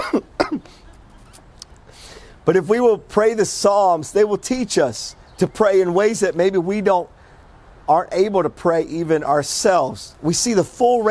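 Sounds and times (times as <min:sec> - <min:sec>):
audience member coughing: 0:00.0 - 0:00.8
speech: 0:02.4 - 0:07.2, 0:07.9 - 0:11.0.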